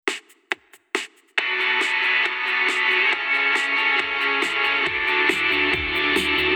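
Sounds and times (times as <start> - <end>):
guitar: 1.4 - 6.5.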